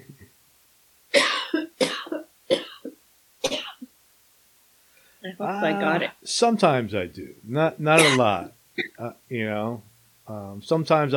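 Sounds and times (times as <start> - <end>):
person coughing from a tickle in the throat: 1.2 - 3.9, 8.0 - 9.1
speech: 5.2 - 11.1.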